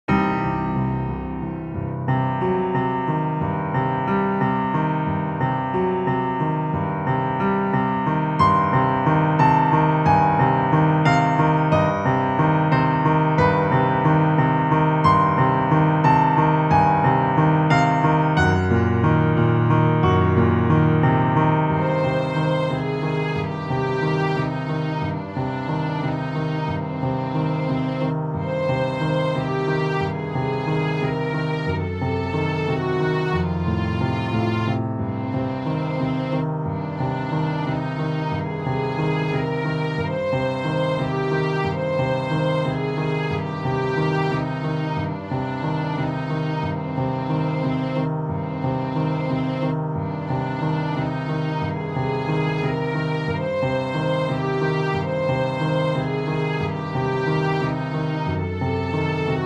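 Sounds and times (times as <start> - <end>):
static worried piano piece: 0.0 - 59.4.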